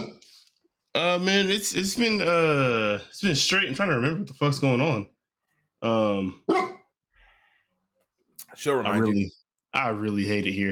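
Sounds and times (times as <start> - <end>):
speech: 1.0 - 5.1, 5.8 - 6.7, 8.6 - 10.7
dog barking: 6.5 - 6.8.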